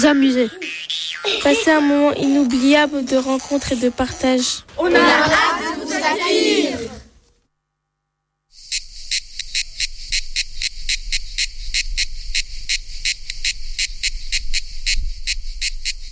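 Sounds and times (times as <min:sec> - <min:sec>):
speech: 0:00.0 - 0:00.6, 0:01.2 - 0:07.0
cicada chirping: 0:08.5 - 0:16.1.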